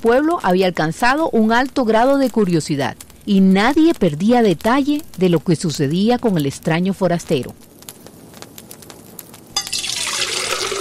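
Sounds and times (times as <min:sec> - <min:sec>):
speech: 0:00.0 - 0:07.7
faint drips and clinks: 0:09.6 - 0:10.8
water pouring into a pot: 0:09.6 - 0:10.8.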